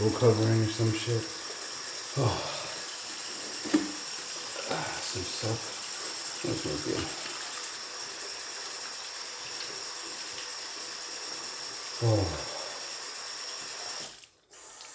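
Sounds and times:
speech: 0:00.0 - 0:01.4, 0:02.2 - 0:02.6, 0:05.2 - 0:05.8, 0:06.4 - 0:07.2, 0:12.0 - 0:12.5
water running from a tap: 0:00.0 - 0:14.9
voice exclaiming: 0:02.2 - 0:02.8.

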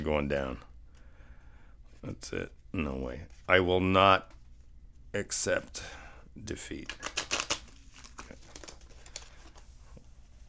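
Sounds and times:
speech: 0:00.1 - 0:00.7, 0:02.0 - 0:04.4, 0:05.1 - 0:07.2
playing cards riffled by dealer during card game: 0:06.7 - 0:10.4.

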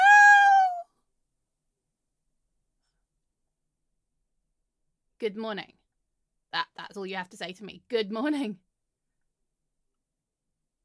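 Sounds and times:
kitten meowing: 0:00.0 - 0:00.8
speech: 0:05.2 - 0:05.8, 0:06.5 - 0:08.6.

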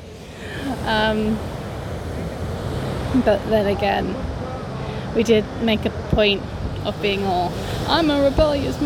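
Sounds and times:
surf rushing on a beach: 0:00.0 - 0:08.8
wind on a beach: 0:00.0 - 0:08.8
speech: 0:00.9 - 0:01.5, 0:03.1 - 0:04.3, 0:05.2 - 0:08.8.

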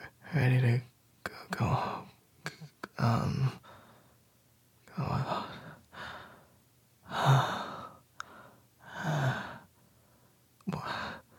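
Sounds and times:
speech: 0:00.4 - 0:00.9, 0:01.5 - 0:02.0, 0:03.0 - 0:03.6
heavy rasping breathy exhalations: 0:03.6 - 0:04.2, 0:05.2 - 0:11.3.

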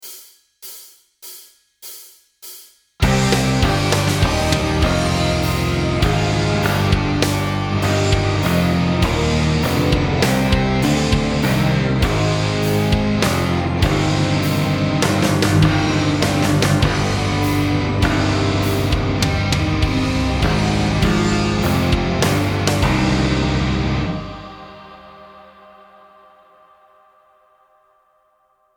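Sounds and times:
metal guitar counterpoint: 0:03.0 - 0:25.5.

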